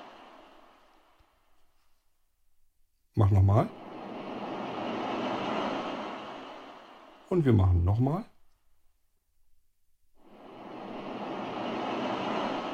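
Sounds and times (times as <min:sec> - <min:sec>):
hissing wash of synthesized noise: 0:00.0 - 0:01.9, 0:03.2 - 0:08.2, 0:10.2 - 0:12.7
speech: 0:03.2 - 0:03.9, 0:07.3 - 0:08.3.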